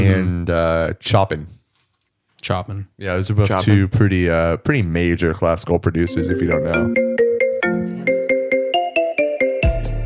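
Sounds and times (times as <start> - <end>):
speech: 0.0 - 1.6, 2.4 - 7.0
marimba-style phone ringtone: 6.1 - 9.7.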